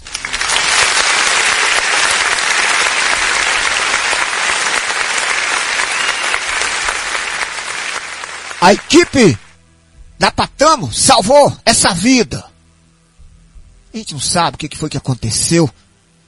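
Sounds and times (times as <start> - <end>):
crowd applauding: 0.0 - 9.6
speech: 8.6 - 9.4, 10.2 - 12.5, 14.0 - 15.9.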